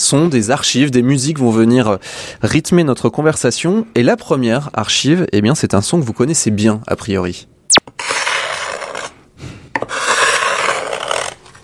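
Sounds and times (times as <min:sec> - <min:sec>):
speech: 0:00.1 - 0:08.1
ice skate blade scraping across ice: 0:08.0 - 0:09.2, 0:09.8 - 0:11.6.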